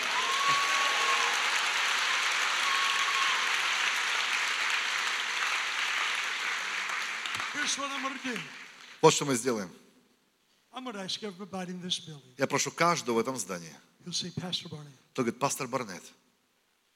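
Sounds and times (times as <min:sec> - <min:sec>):
church congregation applauding at a conference service: 0:00.0 - 0:09.3
speech: 0:07.6 - 0:09.8, 0:10.8 - 0:16.2.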